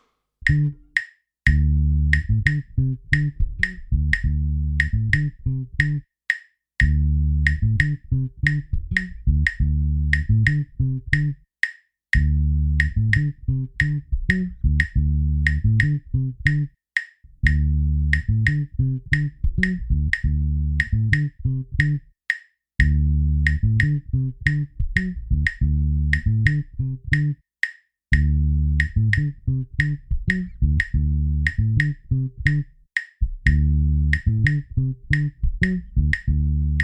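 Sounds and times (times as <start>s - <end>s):
tumbao pattern in three-two played off clave: 0.4s - 6.1s, 6.8s - 11.4s, 12.1s - 16.7s, 17.3s - 22.1s, 22.8s - 27.4s, 28.1s - 36.8s.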